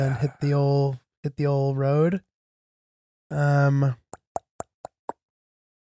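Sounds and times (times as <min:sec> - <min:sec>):
speech: 0:00.0 - 0:02.3, 0:03.3 - 0:04.0
hollow tongue clicks imitating knocking, used as an email sound: 0:04.1 - 0:05.2.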